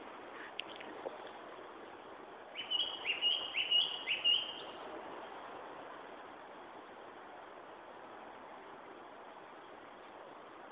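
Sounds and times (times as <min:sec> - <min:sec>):
background hiss: 0:00.0 - 0:10.6
Japanese thrush Turdus cardis singing clear whistled notes: 0:02.5 - 0:04.8.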